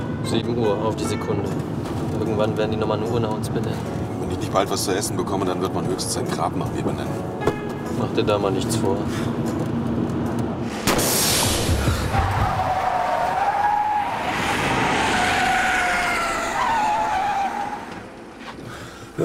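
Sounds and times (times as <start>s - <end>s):
steady road roar: 0.0s - 19.2s
speech: 0.3s - 7.4s, 8.0s - 9.6s
car skidding with a burst tyre: 12.1s - 18.2s.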